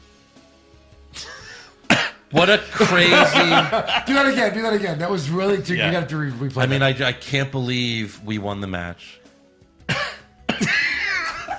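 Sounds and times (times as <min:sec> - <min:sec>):
person coughing: 0:01.9 - 0:02.2, 0:09.9 - 0:11.5
speech: 0:02.3 - 0:09.2
laughter: 0:02.8 - 0:04.4, 0:10.7 - 0:11.5.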